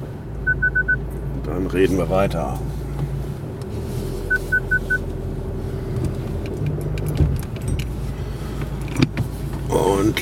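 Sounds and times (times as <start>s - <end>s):
car pulling out of a driveway with low steady engine rumble: 0.0s - 10.1s
short high beeps: 0.4s - 1.0s, 4.3s - 5.0s
speech: 1.5s - 2.7s, 10.0s - 10.1s
light clicks and rattles: 6.0s - 9.7s.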